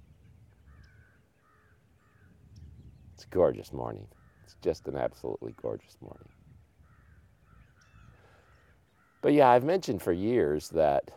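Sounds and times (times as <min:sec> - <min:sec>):
birds calling outdoors: 0:00.0 - 0:11.1
crow cawing: 0:00.6 - 0:02.4, 0:04.1 - 0:09.4
speech: 0:03.2 - 0:06.4, 0:09.2 - 0:11.1.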